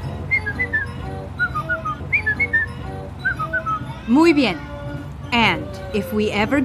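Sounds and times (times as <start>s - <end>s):
person whistling a short bright family signal tune: 0.3s - 4.0s
speech: 4.1s - 4.7s, 5.3s - 6.6s.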